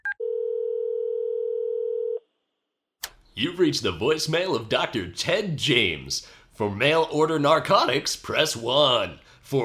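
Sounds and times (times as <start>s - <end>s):
telephone dial tone while placing a call: 0.2s - 2.2s
speech: 3.4s - 9.6s.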